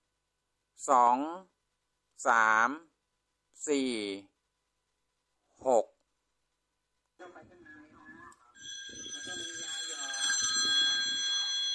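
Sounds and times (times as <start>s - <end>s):
speech: 0.8s - 1.5s, 2.2s - 2.9s, 3.6s - 4.3s, 5.6s - 5.9s
telephone ringing with shrill electronic trill: 8.5s - 11.7s.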